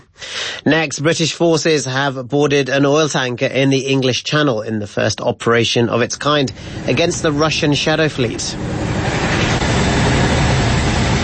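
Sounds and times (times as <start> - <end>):
speech: 0.6 - 8.8
hovering helicopter rotor and engine roar during troop fast-roping: 6.2 - 11.2.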